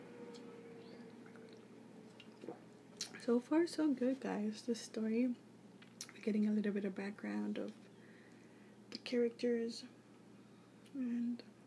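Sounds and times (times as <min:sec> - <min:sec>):
faint steady hum: 0:00.0 - 0:11.6
person drinking water: 0:00.9 - 0:03.2
speech: 0:03.2 - 0:05.5, 0:06.2 - 0:07.8, 0:09.1 - 0:10.0, 0:11.0 - 0:11.5.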